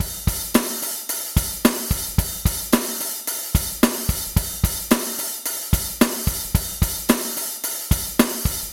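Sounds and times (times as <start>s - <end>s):
hard rock beat: 0.0s - 8.7s.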